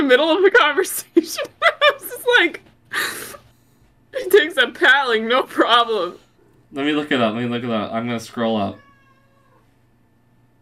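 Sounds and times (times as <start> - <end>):
speech: 0.0 - 3.4, 4.1 - 8.8
low hum: 0.0 - 10.6
cat meowing: 8.6 - 9.7.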